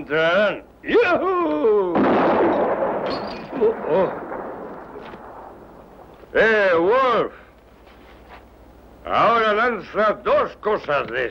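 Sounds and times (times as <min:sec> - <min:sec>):
speech: 0:00.0 - 0:04.3, 0:06.3 - 0:07.4, 0:09.0 - 0:11.2
repeated gunshots during shooting practice: 0:02.0 - 0:06.3.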